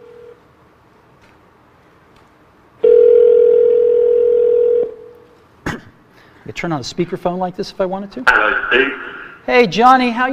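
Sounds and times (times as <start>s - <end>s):
electronic telephone ringback tone of an iPhone calling a mobile number: 2.8s - 5.1s
speech: 6.5s - 10.3s.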